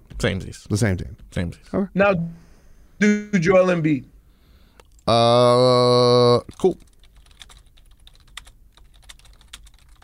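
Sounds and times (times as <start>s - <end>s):
speech: 0.2s - 2.4s, 3.0s - 4.1s, 5.1s - 6.9s
fast typing on a computer keyboard: 6.5s - 10.0s.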